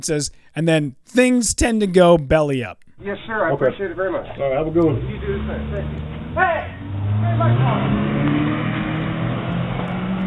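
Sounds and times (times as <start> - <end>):
speech: 0.0 - 8.4
indistinct voices: 0.0 - 9.1
stolen car engine revving and accelerating away: 3.0 - 10.2.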